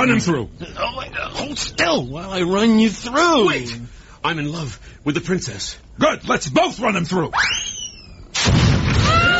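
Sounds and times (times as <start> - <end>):
speech: 0.0 - 7.6
bomb explosion with long rumbling decay: 8.4 - 9.3.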